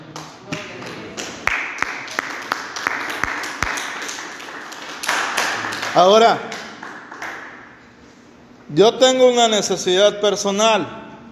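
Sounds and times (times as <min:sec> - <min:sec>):
crowd clapping: 0:00.0 - 0:07.7
speech: 0:06.0 - 0:06.5, 0:08.7 - 0:11.0.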